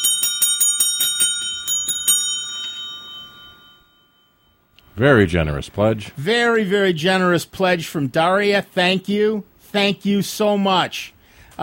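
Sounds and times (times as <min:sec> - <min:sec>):
bright metallic bell dings: 0:00.0 - 0:04.8
speech: 0:05.0 - 0:11.6.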